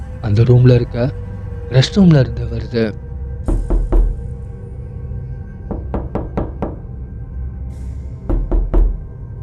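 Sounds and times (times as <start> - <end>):
speech: 0.3 - 3.0
knocking on a door: 3.5 - 4.3, 5.7 - 6.9, 8.3 - 9.2.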